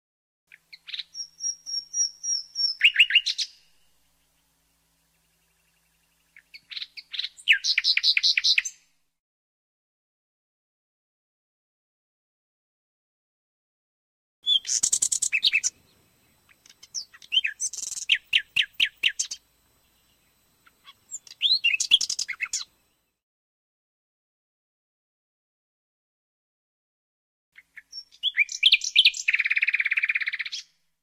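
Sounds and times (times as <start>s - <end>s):
nightingale singing: 0.5s - 8.9s, 14.4s - 23.2s, 27.6s - 30.8s.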